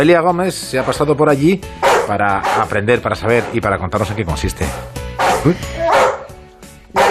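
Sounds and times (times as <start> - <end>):
speech: 0.0 - 6.0
dog barking at a dog training project: 1.8 - 2.7, 3.4 - 3.6, 4.7 - 7.0.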